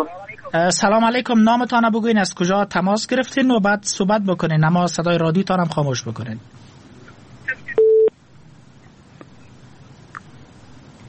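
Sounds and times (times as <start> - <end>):
speech: 0.0 - 6.6
low-pitched telephone busy tone on a phone-in line: 7.8 - 8.1.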